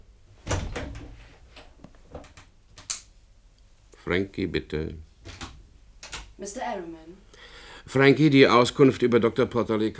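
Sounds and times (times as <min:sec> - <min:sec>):
left door opening and closing: 0:00.4 - 0:02.9, 0:05.2 - 0:06.3
door latch rattling: 0:00.5 - 0:01.2, 0:05.2 - 0:06.3
speech: 0:04.1 - 0:05.1, 0:06.4 - 0:07.3, 0:07.9 - 0:09.9.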